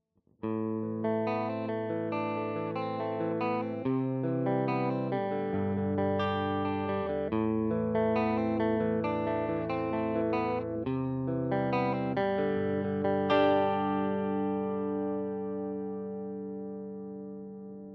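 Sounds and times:
modelled Fender 59 Stratocaster electric guitar on Line 6 Variax JTV-69: 0:00.4 - 0:17.9.

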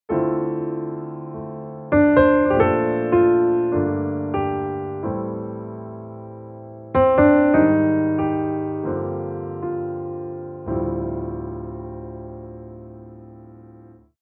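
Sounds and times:
jazzy grand piano: 0:00.1 - 0:14.2.

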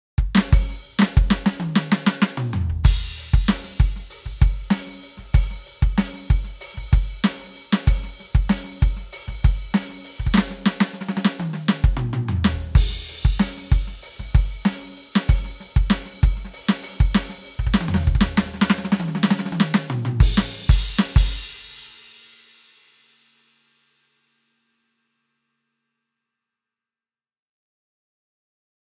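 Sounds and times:
electronic drum set with acoustic kit sound: 0:00.2 - 0:21.6.

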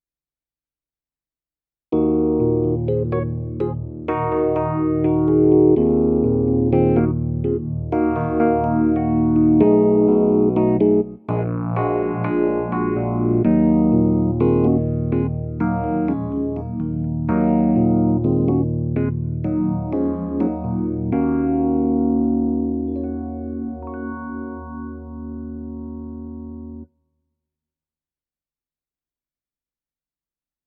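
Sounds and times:
Fender Rhodes electric piano: 0:01.9 - 0:26.9.

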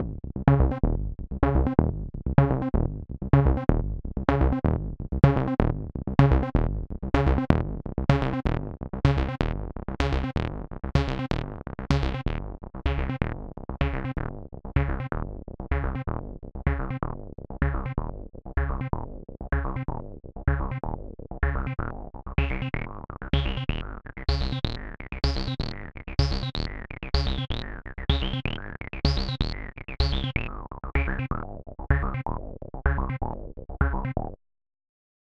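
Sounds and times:
Roland TB-3 sequence: 0:00.0 - 0:34.4.

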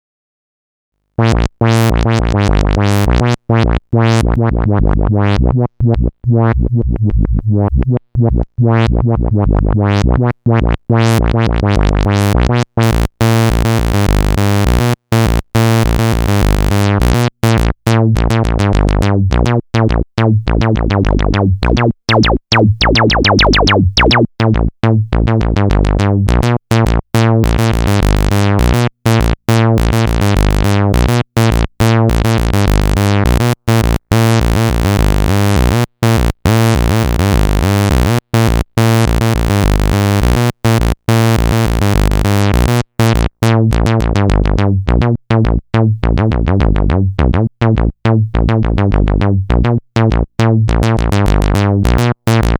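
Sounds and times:
mono saw synth bass: 0:01.2 - 0:52.5.

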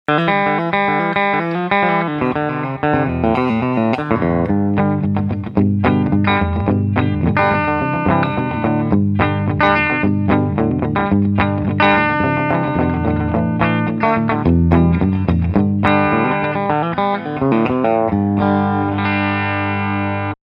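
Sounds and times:
clean electric guitar on bridge pickup: 0:00.1 - 0:20.4.

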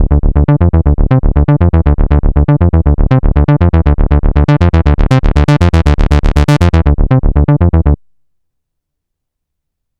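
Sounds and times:
dry bass on a Novation Peak: 0:00.0 - 0:08.0.

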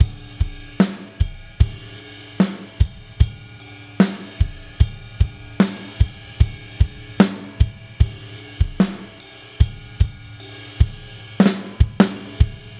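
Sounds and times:
drums: 0:00.0 - 0:12.7.

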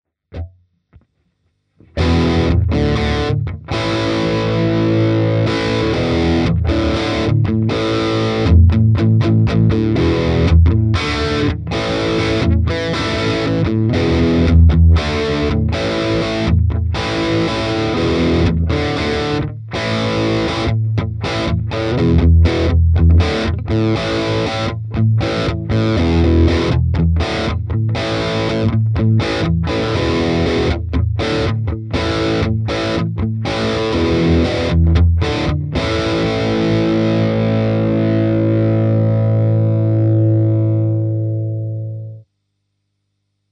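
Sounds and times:
Crate FW15R amplifier with overdrive at gain 12: 0:00.3 - 0:43.4.

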